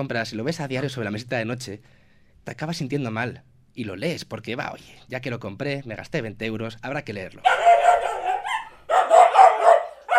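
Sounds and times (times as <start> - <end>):
speech: 0.0 - 8.0
dogs barking: 7.4 - 10.1.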